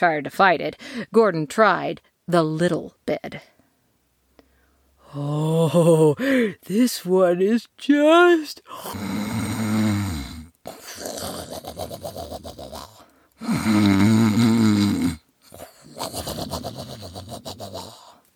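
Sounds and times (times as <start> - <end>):
speech: 0.0 - 3.5, 5.1 - 9.4, 13.4 - 14.9
loud rumbling snoring with wheezy exhales: 8.8 - 18.2.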